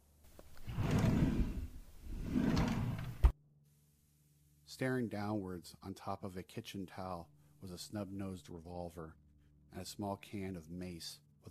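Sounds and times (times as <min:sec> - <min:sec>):
kitchen drawer on wooden runners sliding open: 0:00.6 - 0:03.3
speech: 0:04.7 - 0:11.4.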